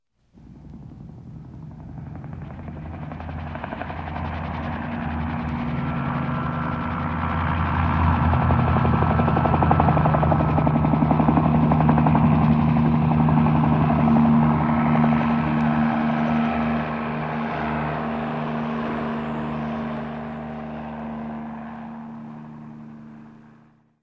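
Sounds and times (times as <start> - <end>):
helicopter: 0.3 - 24.0.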